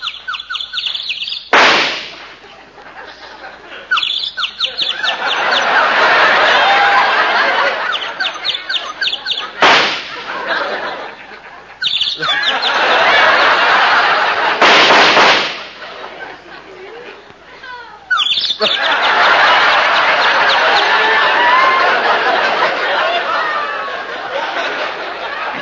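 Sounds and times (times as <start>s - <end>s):
small bird chirping in a tree: 0.0s - 1.5s, 3.9s - 5.7s, 7.9s - 9.6s, 11.8s - 12.8s, 18.1s - 19.1s
gunshots fired at a little bird in a tree: 1.5s - 2.4s, 9.6s - 10.4s, 14.4s - 15.9s
laughter: 2.1s - 25.5s.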